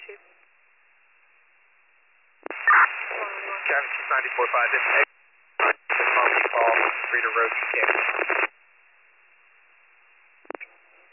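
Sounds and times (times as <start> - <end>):
faint steady radio static on a failed transmission: 2.4 - 8.6
speech: 3.7 - 5.1, 7.1 - 8.4.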